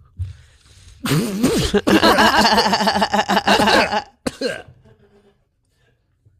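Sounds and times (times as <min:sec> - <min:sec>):
person coughing after a strong vape hit: 0:01.0 - 0:04.8.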